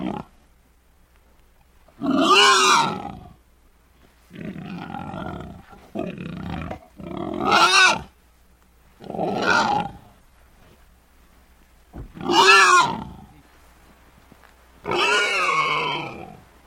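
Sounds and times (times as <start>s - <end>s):
pig squealing loudly: 2.0s - 3.2s, 6.4s - 8.1s, 9.2s - 10.0s, 12.2s - 13.2s, 14.9s - 16.4s.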